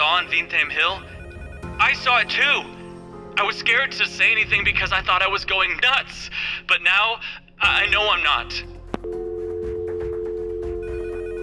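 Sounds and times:
several telephones ringing with electronic tones: 0.0s - 3.1s, 9.0s - 11.4s
speech: 0.2s - 1.2s, 1.8s - 2.8s, 3.4s - 8.8s.

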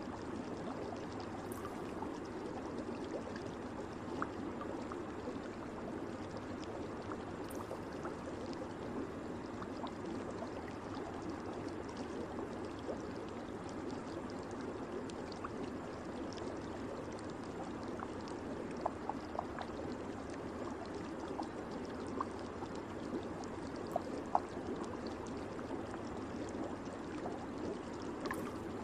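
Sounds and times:
small splashes and drips in a hot spring bath: 0.0s - 28.8s
water pouring into an outdoor hot spring bath on a cold day: 1.4s - 2.0s, 28.3s - 28.8s.

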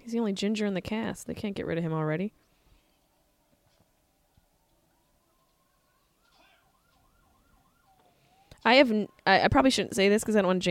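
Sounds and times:
speech: 0.0s - 2.4s, 8.6s - 10.6s
rumbling traffic: 0.7s - 10.6s
ambulance siren passing: 2.9s - 10.0s.

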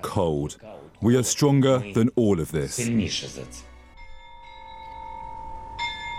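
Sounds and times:
speech: 0.0s - 3.7s
cathedral bells chiming: 3.8s - 6.1s.

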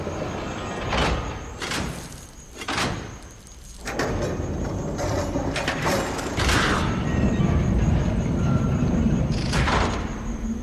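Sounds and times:
heavy golden doors grinding open with mechanical rumble: 0.0s - 10.6s.

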